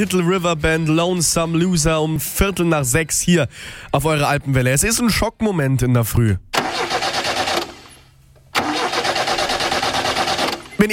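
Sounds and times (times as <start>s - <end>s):
speech: 0.0s - 6.5s
car engine cranking but failing to start: 6.5s - 10.9s.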